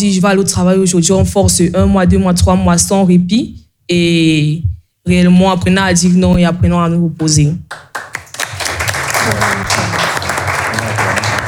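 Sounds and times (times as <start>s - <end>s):
speech: 0.0s - 8.0s, 9.3s - 10.1s
audience applause with many hands clapping: 7.9s - 11.4s.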